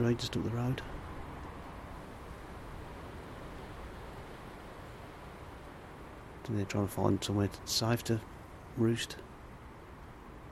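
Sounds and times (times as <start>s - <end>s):
speech: 0.0s - 1.0s, 6.4s - 9.2s
wind blowing outside a back door: 0.0s - 10.5s.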